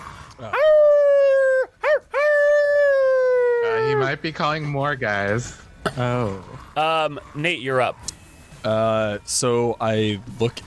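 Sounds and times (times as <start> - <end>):
speech: 0.4 - 0.7, 4.1 - 10.6
person imitating a creature howling: 0.4 - 4.1
brief wavering yelp: 0.4 - 4.2.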